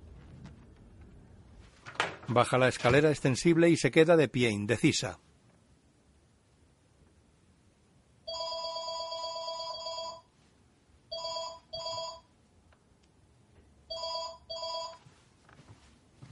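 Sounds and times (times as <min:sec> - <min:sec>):
speech: 0:02.3 - 0:05.3
cordless telephone ringing with a warbling electronic trill: 0:08.3 - 0:10.3, 0:11.1 - 0:12.3, 0:13.9 - 0:15.0.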